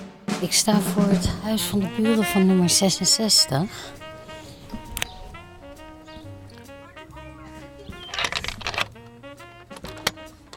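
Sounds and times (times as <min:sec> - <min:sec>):
speech: 0:00.4 - 0:04.0
steady tonal music-like background: 0:00.5 - 0:10.5
key rattling and scraping in a door lock: 0:07.8 - 0:09.0.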